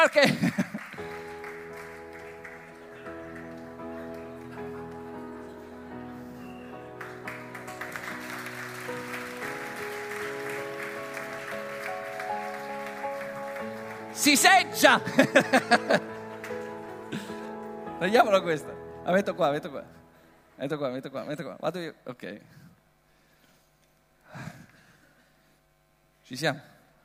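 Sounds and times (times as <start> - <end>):
speech: 0.0 - 0.6, 14.2 - 16.1, 18.0 - 20.0, 20.6 - 22.6, 26.3 - 26.7
audience applause: 0.0 - 17.6
laughter: 0.1 - 1.0, 15.0 - 17.5
music with sustained tones: 0.9 - 20.7.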